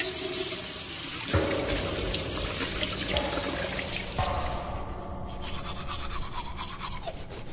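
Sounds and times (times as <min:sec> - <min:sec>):
tap water running: 0:00.0 - 0:04.3
toothbrush scrubbing at a bathroom sink: 0:05.4 - 0:07.5.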